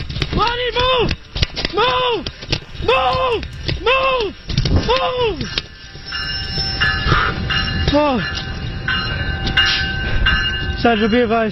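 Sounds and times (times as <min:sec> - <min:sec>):
train rumbling along railway track: 0:00.0 - 0:11.4
speech: 0:00.4 - 0:05.6, 0:07.9 - 0:08.5, 0:10.8 - 0:11.4
brief sliding horn-like tone: 0:01.7 - 0:07.2
thin metallic whines: 0:01.8 - 0:08.2.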